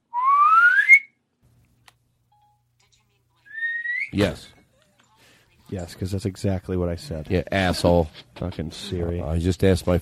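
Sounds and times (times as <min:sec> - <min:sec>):
high-pitched whistle-like censor beep: 0:00.2 - 0:01.1, 0:03.5 - 0:04.2
speech: 0:04.1 - 0:04.6, 0:05.7 - 0:09.9.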